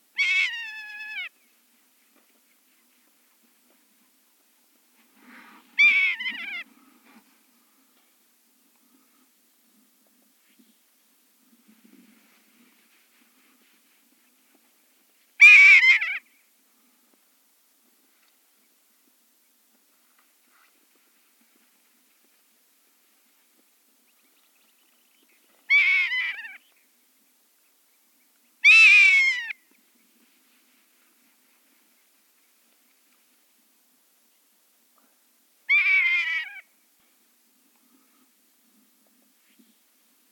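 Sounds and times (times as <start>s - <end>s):
rough-legged buzzard calling: 0.2s - 1.3s, 5.8s - 6.7s, 15.4s - 16.2s, 28.6s - 29.6s, 35.7s - 36.7s.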